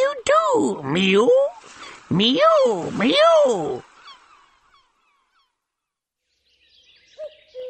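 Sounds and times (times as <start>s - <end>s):
speech: 0.6s - 1.4s, 2.1s - 3.9s
seagull calling: 1.0s - 5.7s.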